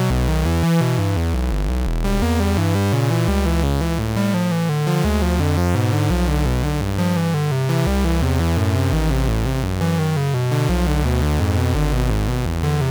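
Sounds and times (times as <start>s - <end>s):
4069 VCO synthesizer oscillator tone: 0.2s - 12.8s.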